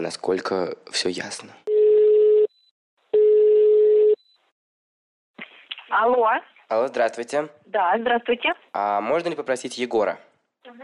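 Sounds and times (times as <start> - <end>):
speech: 0.0 - 1.7, 5.9 - 10.8
telephone ringback tone of an outgoing call: 1.7 - 2.6, 3.2 - 4.2.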